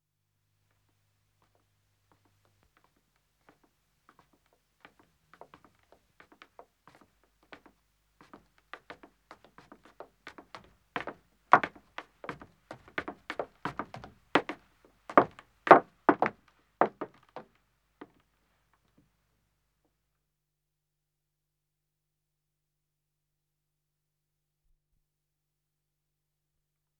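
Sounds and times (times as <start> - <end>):
man's footsteps ascending wooden stairs: 8.9 - 17.5.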